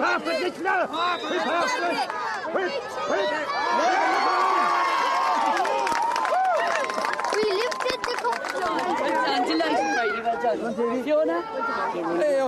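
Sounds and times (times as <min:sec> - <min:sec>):
large community crowd shouting and cheering at a county final: 0:00.0 - 0:12.4
speech: 0:00.5 - 0:04.1, 0:08.8 - 0:12.4.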